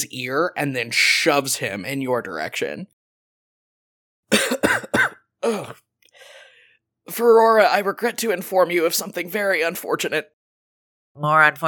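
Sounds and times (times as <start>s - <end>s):
speech: 0.0s - 3.0s, 5.4s - 5.8s, 7.1s - 10.4s, 11.2s - 11.6s
harsh hacking coughs: 4.3s - 5.8s
faint raspy breath: 6.1s - 6.8s.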